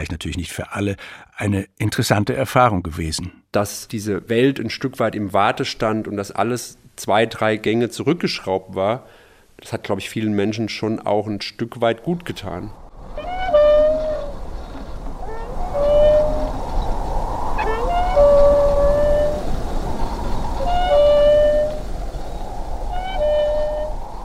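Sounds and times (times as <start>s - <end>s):
speech: 0.0s - 12.8s
windmill squeaking as it turns at a small railway station: 13.1s - 24.2s.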